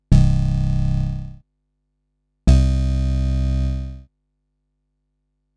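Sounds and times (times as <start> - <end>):
whump synth bass from a Moog Model 15 iOS app: 0.1 - 1.4, 2.5 - 4.0.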